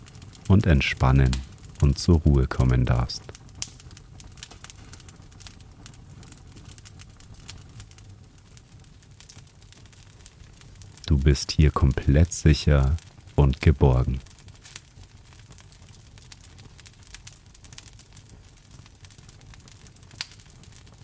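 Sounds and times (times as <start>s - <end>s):
fire crackling in a fireplace with pops and snaps: 0.0s - 21.0s
person speaking calmly: 0.5s - 3.2s, 11.1s - 14.3s
speech: 0.5s - 3.3s, 11.2s - 14.3s.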